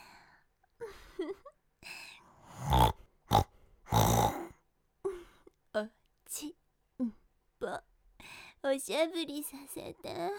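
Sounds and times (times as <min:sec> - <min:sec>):
breathy vocal sounds: 0:02.2 - 0:05.2
person imitating pig grunts and oinks: 0:02.6 - 0:04.6
speech: 0:05.8 - 0:07.9, 0:08.6 - 0:10.3.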